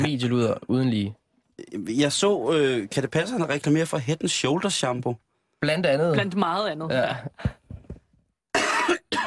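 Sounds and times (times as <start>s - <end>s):
speech: 0.0s - 7.6s
loud harsh coughs: 8.5s - 9.2s.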